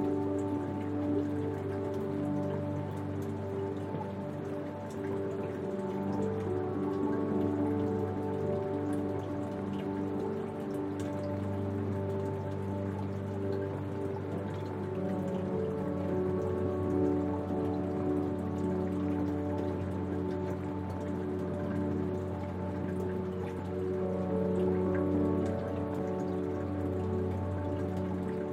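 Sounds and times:
soft piano notes in a slow sustained loop: 0.0s - 28.5s
steady rain pattering against a window at night: 0.0s - 28.5s.

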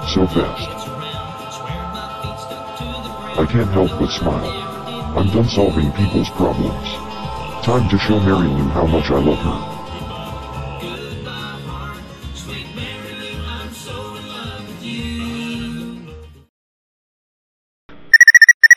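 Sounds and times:
busy music: 0.0s - 12.8s
speech: 0.1s - 0.9s, 3.4s - 7.0s, 7.6s - 9.7s
car remote lock chirping in sharp high-pitched beeps: 18.2s - 18.7s.

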